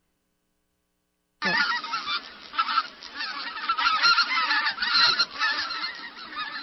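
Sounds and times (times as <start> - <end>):
chorus of white-fronted geese yelping and honking: 1.4 - 6.6.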